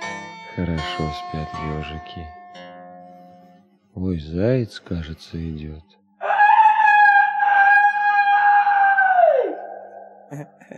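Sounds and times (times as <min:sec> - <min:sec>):
speech: 0:00.6 - 0:02.4, 0:04.0 - 0:06.0, 0:10.3 - 0:10.7
person imitating a rooster crow: 0:06.2 - 0:09.6.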